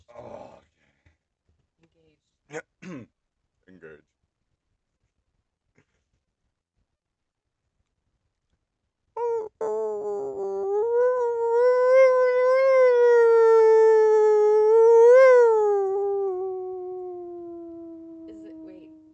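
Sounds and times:
person imitating a wolf howl: 0:09.2 - 0:19.1.

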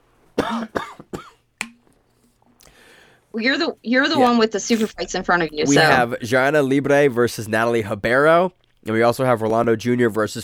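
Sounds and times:
harsh hacking coughs: 0:00.4 - 0:01.4
speech: 0:00.5 - 0:01.0, 0:03.3 - 0:10.4.

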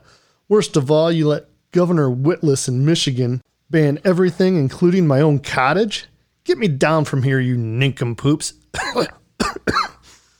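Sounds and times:
speech: 0:00.5 - 0:09.9
short dry coughs: 0:08.7 - 0:10.2.

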